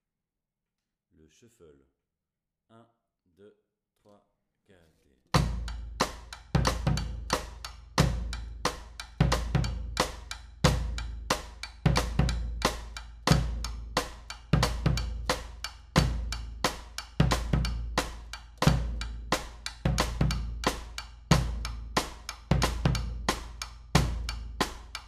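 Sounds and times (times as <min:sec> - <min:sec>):
batucada drumming with a shuffle intro: 0:05.4 - 0:25.0.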